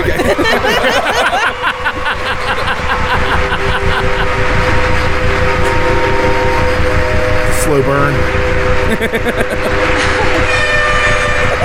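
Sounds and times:
laughter: 0:00.0 - 0:05.8, 0:08.6 - 0:10.6, 0:11.2 - 0:11.6
air horn blaring with multi-tone drone: 0:00.0 - 0:11.6
rumbling rhythmic clatter: 0:00.0 - 0:11.6.

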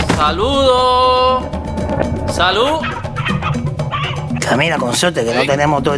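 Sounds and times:
speech: 0:00.2 - 0:01.5, 0:02.4 - 0:03.0, 0:04.5 - 0:05.9
rooster clucking: 0:02.8 - 0:05.6.

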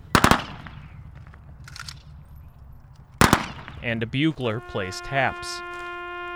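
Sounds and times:
ringing after rifle volleys: 0:00.0 - 0:01.2, 0:03.2 - 0:05.7
rifle volleys of a gun salute fired by an Army honor guard: 0:00.0 - 0:03.9
speech: 0:03.8 - 0:05.8.

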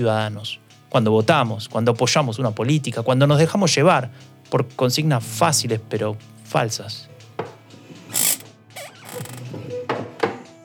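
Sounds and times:
speech: 0:00.0 - 0:07.1
chair creaking as a man settles into it: 0:07.4 - 0:10.2.

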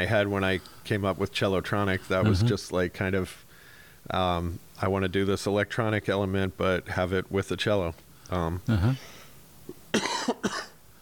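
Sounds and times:
speech: 0:00.0 - 0:03.4, 0:04.0 - 0:09.2
short voiced utterances: 0:08.6 - 0:09.1
person coughing: 0:08.7 - 0:09.2, 0:09.9 - 0:10.8.

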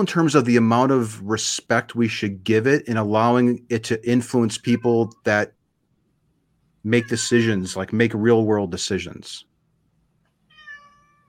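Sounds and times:
speech: 0:00.0 - 0:05.6, 0:06.8 - 0:09.5
cat meowing: 0:04.5 - 0:05.3, 0:06.9 - 0:07.8, 0:10.5 - 0:11.2.

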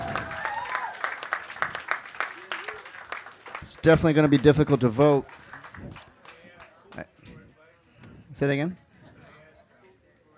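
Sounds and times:
audience applauding: 0:00.0 - 0:07.0
speech: 0:03.7 - 0:05.9, 0:08.4 - 0:08.8.

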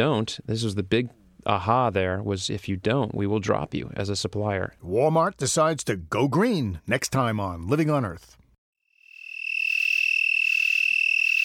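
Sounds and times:
speech: 0:00.0 - 0:08.4
broad-winged tree cricket trilling: 0:08.9 - 0:11.4.

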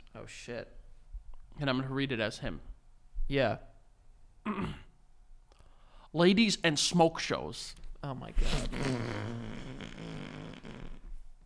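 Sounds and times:
speech: 0:00.2 - 0:00.8, 0:01.6 - 0:02.7, 0:03.3 - 0:03.7, 0:04.4 - 0:04.8, 0:06.1 - 0:10.0
long loud rattling fart noise: 0:08.4 - 0:11.2.

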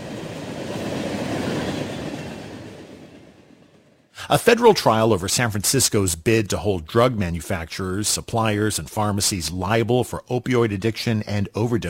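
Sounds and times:
slow freight train rolling past: 0:00.0 - 0:11.8
speech: 0:04.3 - 0:11.8.

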